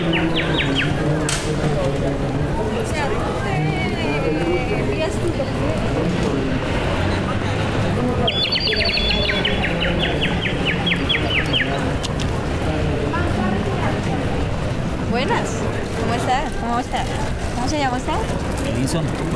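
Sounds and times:
birds calling at dusk with high chirps and trills: 0:00.0 - 0:01.2, 0:06.8 - 0:12.1
constant bed of noise with voices: 0:00.0 - 0:19.3.

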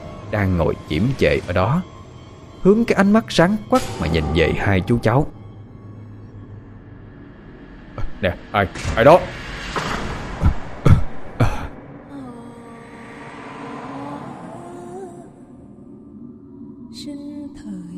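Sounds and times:
low continuous rumbling background: 0:00.0 - 0:17.9
speech: 0:00.3 - 0:01.9, 0:02.6 - 0:05.4, 0:08.2 - 0:09.5
harsh coughs: 0:10.8 - 0:11.8.

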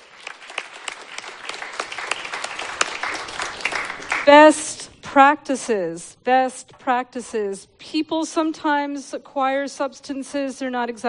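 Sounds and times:
crowd applauding: 0:00.0 - 0:04.8
speech: 0:04.3 - 0:11.0.

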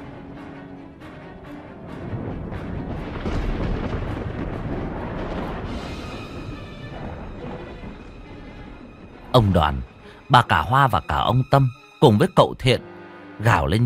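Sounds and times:
heavy sustained low thunder in a thunderstorm: 0:01.8 - 0:09.4
speech: 0:09.4 - 0:13.8.

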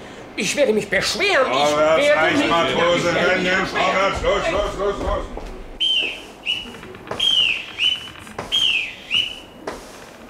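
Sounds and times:
steady noise: 0:00.0 - 0:10.2
speech: 0:00.4 - 0:05.5
boatswain's pipe calls on a ship: 0:05.8 - 0:09.6.

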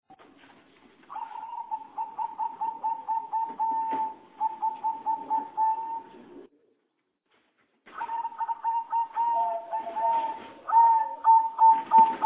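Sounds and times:
Java sparrow song: 0:01.1 - 0:06.2, 0:07.9 - 0:12.2.

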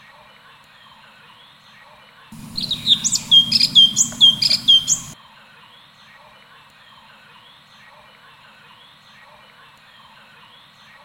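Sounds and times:
leafbird singing fast with down-slurred whistles: 0:02.4 - 0:05.2
steady low hum: 0:02.4 - 0:05.2.

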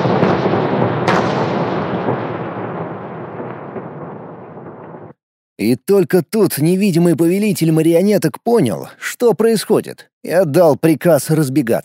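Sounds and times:
grenades exploding: 0:00.0 - 0:05.2
speech: 0:05.6 - 0:11.8.

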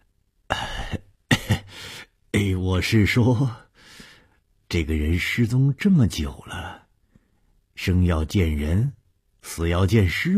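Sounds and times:
old man's awkward cough: 0:00.6 - 0:01.8
speech: 0:02.3 - 0:03.6, 0:04.7 - 0:06.8, 0:07.8 - 0:10.3.

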